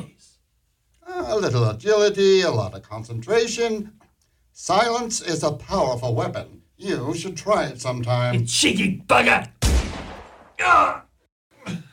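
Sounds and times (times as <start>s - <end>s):
speech: 1.0s - 4.0s, 4.6s - 9.6s, 10.6s - 11.1s
gunshot fired at an unarmed man: 9.6s - 10.6s.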